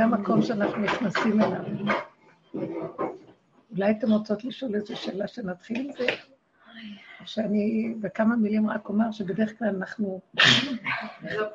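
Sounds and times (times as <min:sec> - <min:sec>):
speech: 0:00.0 - 0:03.1, 0:03.7 - 0:11.5
sneeze: 0:10.4 - 0:11.4.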